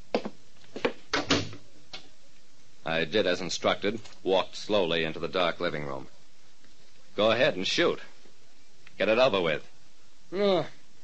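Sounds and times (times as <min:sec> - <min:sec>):
apartment door closing with a double thud: 0:01.1 - 0:01.6
speech: 0:02.9 - 0:06.2, 0:07.2 - 0:08.1, 0:09.0 - 0:09.7, 0:10.3 - 0:11.0.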